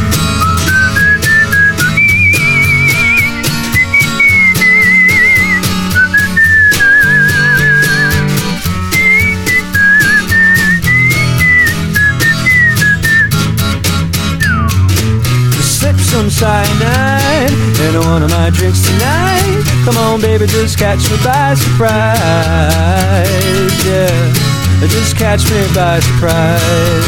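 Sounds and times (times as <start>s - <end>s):
full loud band backing with steady drums: 0.0s - 27.0s
clear melodic whistled tune: 0.3s - 13.6s, 14.2s - 15.0s
speech: 17.9s - 27.0s.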